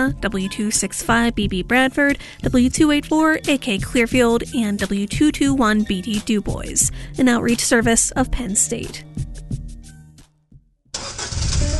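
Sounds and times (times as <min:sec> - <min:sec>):
speech: 0:00.0 - 0:09.3
old car engine starting: 0:11.0 - 0:11.7.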